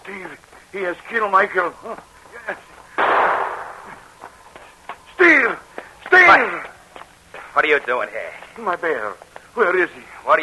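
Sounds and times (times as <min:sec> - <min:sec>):
speech: 0:00.1 - 0:02.7, 0:07.6 - 0:10.4
gunshot fired near the opening of a mine: 0:03.0 - 0:04.0.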